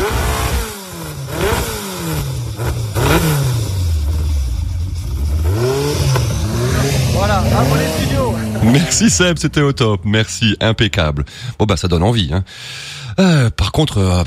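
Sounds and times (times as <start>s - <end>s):
loud engine revving: 0.0s - 9.8s
speech: 8.8s - 14.2s.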